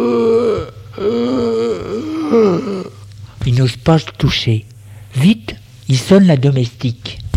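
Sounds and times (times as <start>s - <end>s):
voice imitating hoarse labored breathing: 0.0s - 3.1s
speech: 3.6s - 7.2s.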